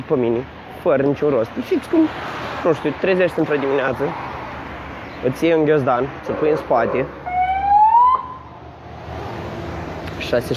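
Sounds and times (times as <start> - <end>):
speech: 0.0 - 4.3, 5.2 - 7.2, 10.3 - 10.5
police car siren wailing: 7.1 - 8.6.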